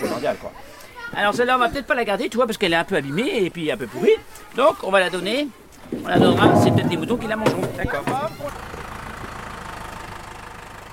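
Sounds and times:
speech: 0.2 - 8.7
tractor engine drone heading back from an orchard loaded with apples: 7.1 - 10.9.

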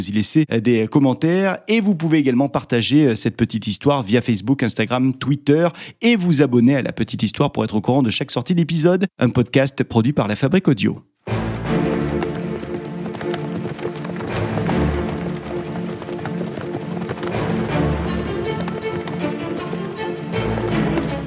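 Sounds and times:
speech: 0.0 - 11.1
clip-clop of many hooves of horse-drawn convoy: 11.3 - 21.2
horse-drawn wagons and stagecoach rumbling: 11.6 - 21.2.

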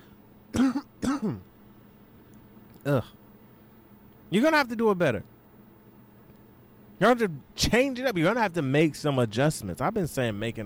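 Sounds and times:
person clearing throat with something stuck in it: 0.5 - 1.5
speech: 1.2 - 1.5, 2.8 - 3.2, 4.3 - 5.3, 7.0 - 10.6.

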